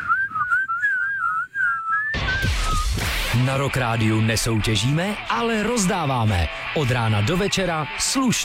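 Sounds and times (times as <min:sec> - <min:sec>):
person whistling a wavering tuneful melody: 0:00.0 - 0:03.0
burst of broadband noise: 0:02.2 - 0:07.0
speech: 0:03.4 - 0:08.4.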